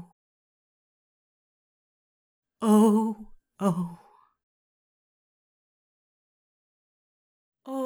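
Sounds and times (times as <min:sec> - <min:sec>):
dry vocals: 0:02.6 - 0:04.1.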